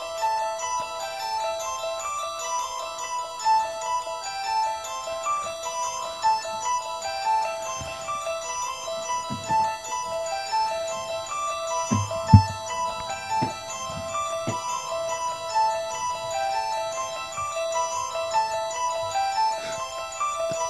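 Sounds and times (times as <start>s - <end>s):
eerie repeating keyboard horror film melody: 0.0s - 20.6s
soft low thuds: 11.9s - 14.6s.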